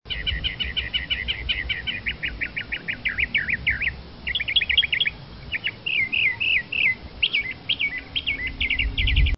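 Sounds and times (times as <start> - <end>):
mocker bird sounds: 0.1 - 9.3.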